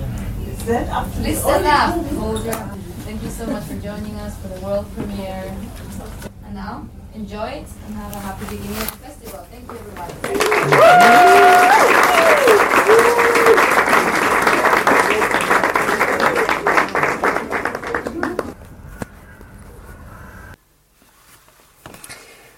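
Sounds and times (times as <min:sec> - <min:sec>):
speech: 0:00.7 - 0:13.2
crowd applauding loudly: 0:10.0 - 0:18.6
whistles and cheers: 0:10.4 - 0:14.1.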